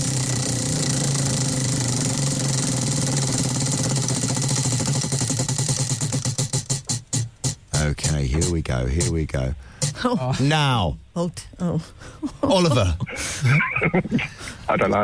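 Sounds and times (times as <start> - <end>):
prize wheel spinning in a game: 0.0 - 10.0
speech: 8.4 - 15.0
laughter: 12.2 - 15.0.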